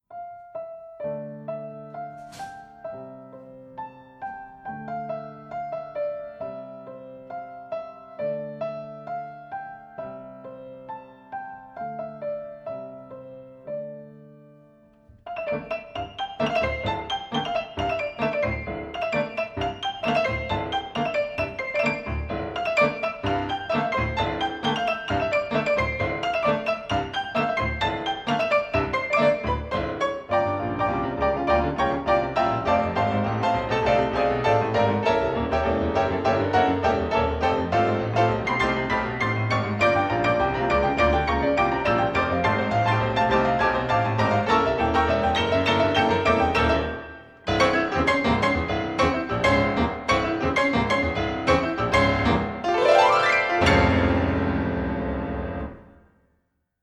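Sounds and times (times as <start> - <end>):
piano duo: 0.0 - 56.2.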